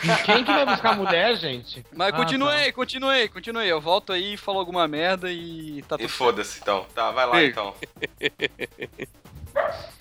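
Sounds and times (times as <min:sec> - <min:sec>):
speech: 0:00.0 - 0:10.0
dog barking: 0:06.0 - 0:07.8, 0:09.6 - 0:09.9
laughter: 0:06.0 - 0:09.1.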